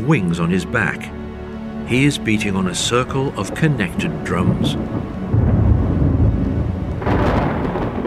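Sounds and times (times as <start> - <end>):
speech: 0.0 - 1.2, 1.9 - 5.2
rain hissing: 1.5 - 8.0
thunder rumbling: 2.6 - 8.0
crackling thunder roll: 3.4 - 8.0.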